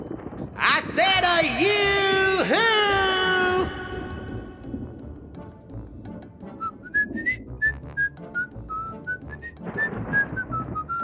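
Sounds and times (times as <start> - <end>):
speech: 0.5 - 2.8
person whistling a wavering tune: 2.0 - 5.1, 6.4 - 11.0.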